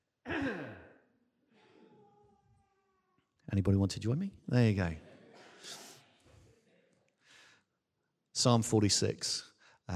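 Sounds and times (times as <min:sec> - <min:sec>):
heavy cough away from the microphone: 0:00.2 - 0:01.0
speech: 0:00.4 - 0:00.8, 0:03.5 - 0:05.1, 0:08.4 - 0:09.9.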